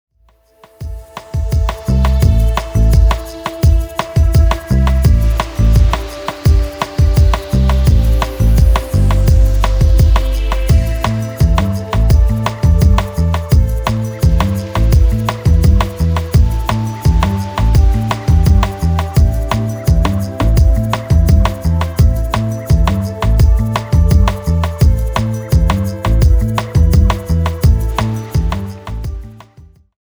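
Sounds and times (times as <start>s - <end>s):
85 bpm remix: 0.6s - 29.7s.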